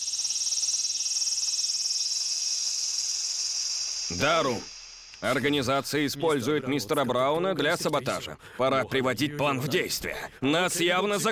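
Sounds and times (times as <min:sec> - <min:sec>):
cicadas chirring loudly: 0:00.0 - 0:06.0
speech: 0:04.1 - 0:11.3.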